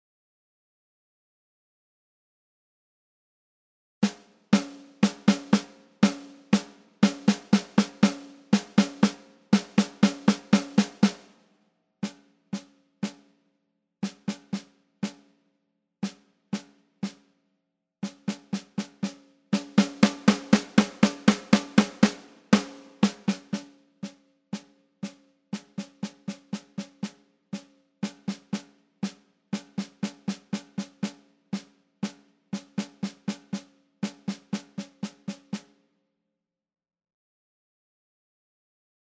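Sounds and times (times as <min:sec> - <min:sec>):
snare drum at 120 BPM: 0:04.0 - 0:13.4, 0:14.0 - 0:15.4, 0:16.0 - 0:17.4, 0:18.0 - 0:35.8.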